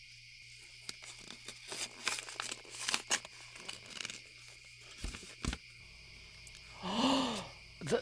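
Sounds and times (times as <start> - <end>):
gift wrapping paper crinkling and tearing as a gift is unwrapped: 0.8 - 5.6.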